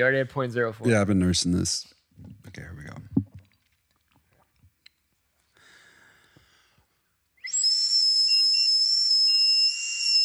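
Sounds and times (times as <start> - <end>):
speech: 0.0 - 3.0
high-pitched whistling tone of person blowing into a breathalyzer: 7.4 - 10.2.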